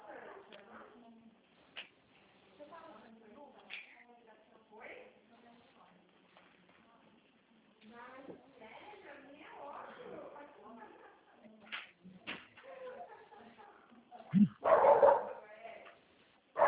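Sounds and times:
people talking quietly: 0:00.0 - 0:16.6
dog barking: 0:14.6 - 0:15.4.

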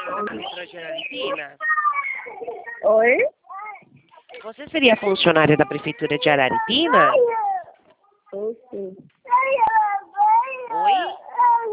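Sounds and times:
speech: 0:00.1 - 0:03.4, 0:04.4 - 0:07.4, 0:08.3 - 0:09.6
small child crying over a phone call: 0:01.6 - 0:03.8, 0:05.4 - 0:07.8, 0:09.3 - 0:11.7.

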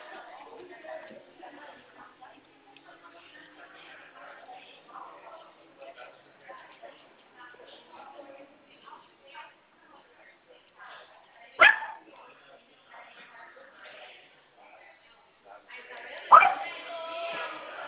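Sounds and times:
people talking quietly: 0:00.0 - 0:17.8
dog barking: 0:11.6 - 0:12.1, 0:16.3 - 0:16.7.

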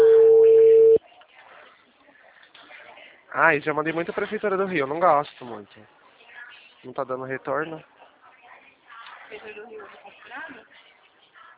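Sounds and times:
telephone call tone: 0:00.0 - 0:01.0
speech: 0:03.4 - 0:06.0, 0:06.8 - 0:07.9, 0:09.3 - 0:10.8.

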